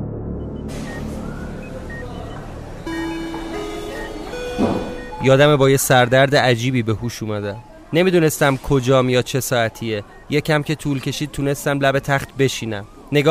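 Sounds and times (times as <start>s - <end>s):
car horn blaring in a street: 2.4s - 5.6s
speech: 5.2s - 13.3s.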